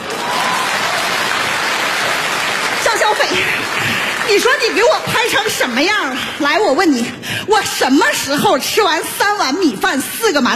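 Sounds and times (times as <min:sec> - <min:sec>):
thunderous applause from dance troupe members: 0:00.0 - 0:07.6
speech: 0:03.1 - 0:10.5.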